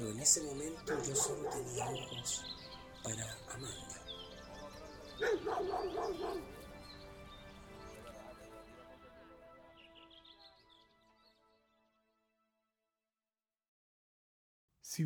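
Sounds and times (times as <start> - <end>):
speech: 0.0 - 4.1, 5.2 - 6.6
faint birds chirping: 0.0 - 11.6
dogs barking playfully in a park: 0.9 - 2.4, 5.2 - 6.6.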